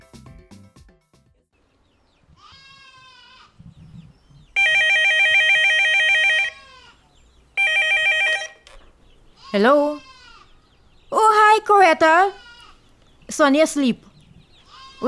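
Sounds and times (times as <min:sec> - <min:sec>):
bleating-like call: 0:02.4 - 0:03.6, 0:05.7 - 0:07.1, 0:09.4 - 0:10.6, 0:12.3 - 0:12.8, 0:14.6 - 0:15.0
telephone ringing: 0:04.6 - 0:06.6, 0:07.6 - 0:08.7
speech: 0:09.5 - 0:10.0, 0:11.7 - 0:12.4, 0:13.4 - 0:14.1.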